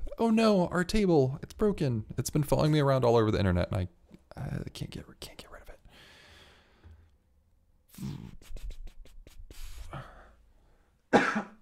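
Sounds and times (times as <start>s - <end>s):
speech: 0.2s - 5.5s, 8.0s - 8.3s
person coughing: 11.1s - 11.6s.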